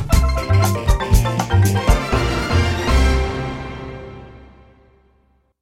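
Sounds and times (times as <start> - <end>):
quirky musical stinger: 0.2 - 4.1.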